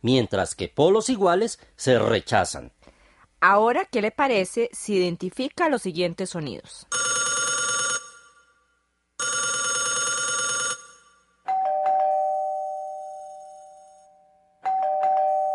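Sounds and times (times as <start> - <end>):
speech: 0.0 - 2.8, 3.4 - 7.1
old-style telephone bell ringing: 6.9 - 15.5
ding-dong doorbell chime: 11.5 - 15.5.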